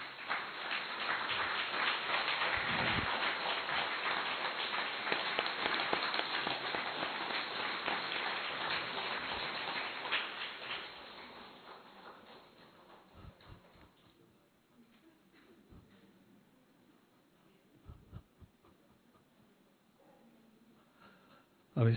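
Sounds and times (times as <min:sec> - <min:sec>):
audience clapping loudly: 0:00.0 - 0:13.8.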